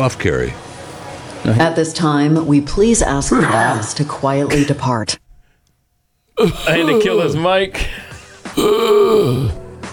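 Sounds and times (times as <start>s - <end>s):
speech: 0.0s - 0.6s, 1.4s - 5.2s, 6.4s - 8.0s, 8.6s - 9.6s
raspy cough directly into a microphone: 6.4s - 9.7s.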